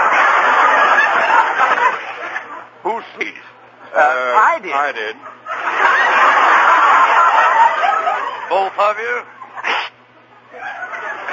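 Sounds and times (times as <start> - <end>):
laughter: 0.0 - 11.3
speech: 4.6 - 5.3, 8.5 - 9.4
person sneezing: 9.6 - 10.0.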